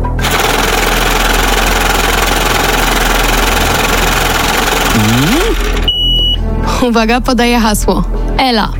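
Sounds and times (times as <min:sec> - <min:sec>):
lottery drawing machine whirring and rattling: 0:00.0 - 0:05.9
speech: 0:06.8 - 0:08.7.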